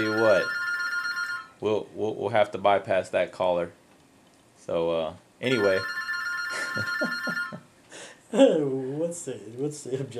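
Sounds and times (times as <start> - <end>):
speech: 0.0 - 0.6, 1.6 - 3.8, 4.6 - 6.0, 6.8 - 7.4, 8.3 - 10.1
telephone ringing in a radio studio: 0.0 - 1.6, 5.4 - 7.7.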